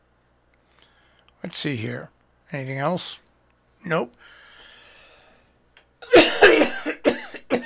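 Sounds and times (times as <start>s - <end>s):
speech: 1.4s - 3.2s, 3.8s - 4.4s
dry cough: 6.0s - 7.6s.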